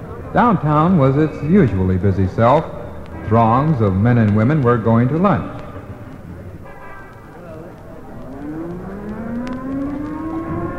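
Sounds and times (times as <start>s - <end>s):
speech: 0.3s - 5.6s
civil defense alert siren sounding during an equipment test: 8.2s - 10.7s.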